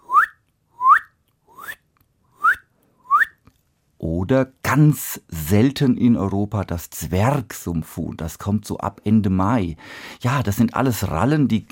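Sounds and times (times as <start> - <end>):
person whistling an imitation of a spotted crake call: 0.0 - 1.8, 2.4 - 3.4
speech: 4.0 - 11.7.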